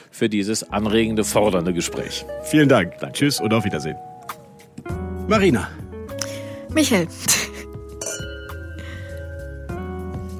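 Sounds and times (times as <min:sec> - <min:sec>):
speech: 0:00.2 - 0:04.1, 0:05.3 - 0:05.8, 0:06.8 - 0:07.4
glasses clinking in a toast: 0:08.0 - 0:09.2.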